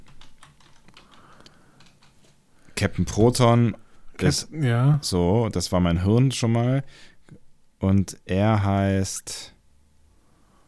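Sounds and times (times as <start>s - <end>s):
typing on a computer keyboard: 0.0s - 2.4s
speech: 2.8s - 9.5s.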